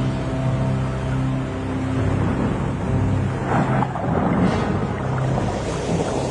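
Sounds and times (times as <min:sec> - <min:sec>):
low droning rumble: 0:00.0 - 0:06.2
stormy waves rushing: 0:01.8 - 0:06.2
stormy wind: 0:02.0 - 0:06.2
surge of spray: 0:04.1 - 0:06.2.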